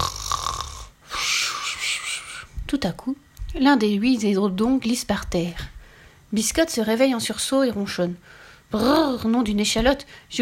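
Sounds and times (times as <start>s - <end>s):
sleeper snoring: 0.0s - 0.9s
speech: 2.7s - 5.7s, 6.3s - 10.4s.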